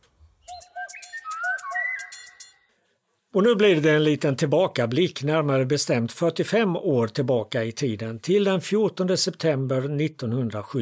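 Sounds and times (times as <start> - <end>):
Eurasian pygmy owl whistled call: 0.4 - 2.6
speech: 3.3 - 10.8.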